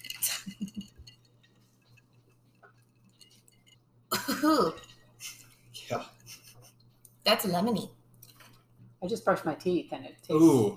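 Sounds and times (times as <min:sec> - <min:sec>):
cocktail glasses clinking in a toast: 0:00.0 - 0:07.0
speech: 0:04.4 - 0:04.8, 0:07.3 - 0:08.0, 0:09.0 - 0:10.7.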